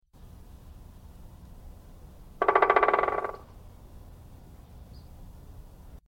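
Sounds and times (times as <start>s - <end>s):
woodpecker pecking tree: 2.4s - 3.6s.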